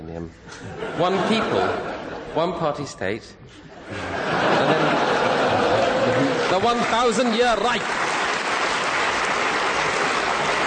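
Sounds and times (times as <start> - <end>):
speech: 0.1 - 5.0, 6.1 - 8.0
laughter: 0.5 - 2.5, 3.5 - 7.4
party conference delegates clapping: 4.4 - 10.6.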